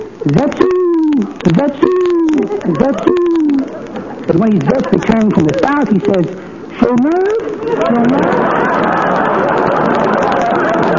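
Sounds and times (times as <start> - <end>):
speech: 0.2 - 0.7, 1.5 - 1.9, 2.6 - 3.4, 4.3 - 8.8
voice imitating the call of the speckled question bird: 0.2 - 3.7
laughter: 0.2 - 10.9.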